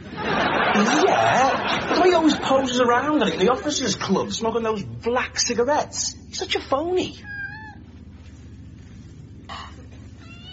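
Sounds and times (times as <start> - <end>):
laughter: 0.0 - 4.4
steady low mechanical hum: 0.0 - 10.5
speech: 0.8 - 7.3
cat meowing: 7.2 - 7.8, 10.2 - 10.5.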